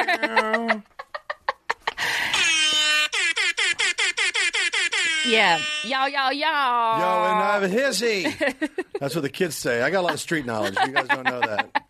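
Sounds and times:
laughter: 0:00.0 - 0:02.1, 0:09.8 - 0:11.8
loud brassy air horn blasts: 0:02.3 - 0:06.2
speech: 0:05.3 - 0:11.7.

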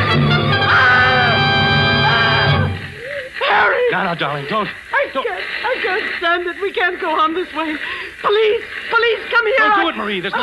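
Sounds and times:
woman shrieking: 0:00.6 - 0:04.0
speech: 0:04.1 - 0:10.4.

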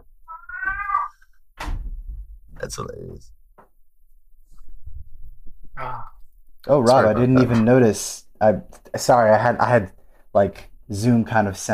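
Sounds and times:
cat meowing: 0:00.2 - 0:01.3
short dull thump: 0:01.6 - 0:02.6
speech: 0:02.6 - 0:03.4, 0:05.8 - 0:11.7.

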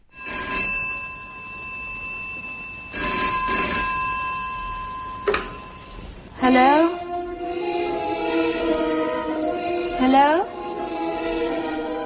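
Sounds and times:
old-fashioned telephone bell ringing: 0:00.0 - 0:06.4
faint electrical hum: 0:00.0 - 0:12.0
speech: 0:06.4 - 0:07.0, 0:10.0 - 0:10.6.

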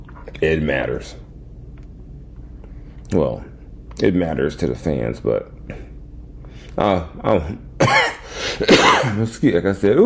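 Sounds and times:
speech: 0:00.4 - 0:01.2, 0:03.1 - 0:05.9, 0:06.8 - 0:07.6, 0:08.6 - 0:10.0
harsh coughs: 0:07.8 - 0:09.2.

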